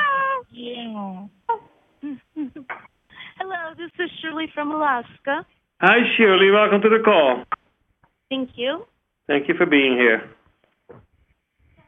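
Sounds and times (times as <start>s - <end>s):
human voice imitating a cat meowing on a group phone call: 0.0s - 0.5s
speech: 4.0s - 7.5s, 8.3s - 10.4s.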